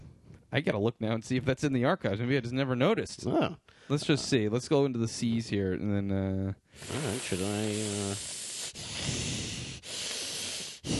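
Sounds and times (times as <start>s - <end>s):
speech: 0.5s - 9.3s
deep noisy breathing while concentrating: 6.7s - 10.9s.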